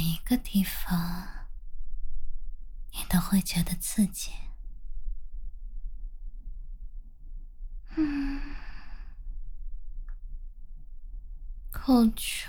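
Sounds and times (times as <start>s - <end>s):
quiet low hum: 0.0s - 12.4s
speech: 0.2s - 1.4s, 3.1s - 4.5s, 8.0s - 8.5s, 11.8s - 12.4s
heavy breathy exhale with a slight voiced edge: 7.9s - 9.2s.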